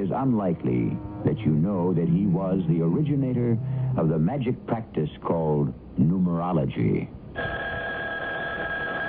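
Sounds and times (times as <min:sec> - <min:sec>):
speech: 0:00.1 - 0:07.5
telephone ringing with a steady electronic tone: 0:07.4 - 0:09.0.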